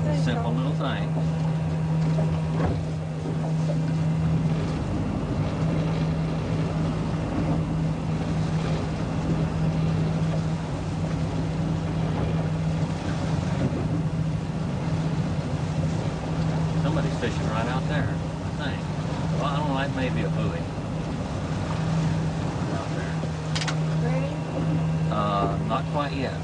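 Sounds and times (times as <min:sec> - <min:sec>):
motorboat engine droning while turning around: 0:00.0 - 0:26.4
rushing water: 0:00.0 - 0:26.4
speech: 0:00.2 - 0:01.5.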